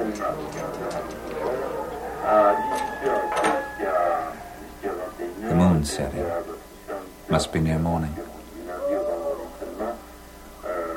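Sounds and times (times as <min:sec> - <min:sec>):
owl hooting: 0:00.0 - 0:05.5, 0:08.5 - 0:10.9
speech: 0:05.8 - 0:06.6, 0:07.3 - 0:08.2.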